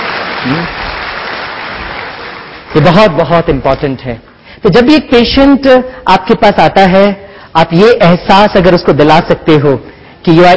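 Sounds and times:
audience applause at a lecture: 0:00.0 - 0:02.8
speech: 0:00.4 - 0:00.9, 0:02.7 - 0:10.5.

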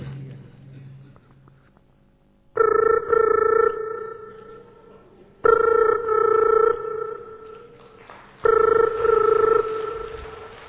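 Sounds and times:
faint low hum: 0:00.0 - 0:10.6
telephone ringing: 0:02.6 - 0:10.6.

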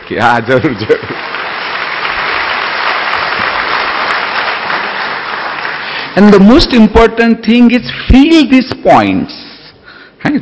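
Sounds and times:
conference audience clapping: 0:00.0 - 0:06.4
speech: 0:00.1 - 0:01.3, 0:06.2 - 0:09.5, 0:10.2 - 0:10.4.

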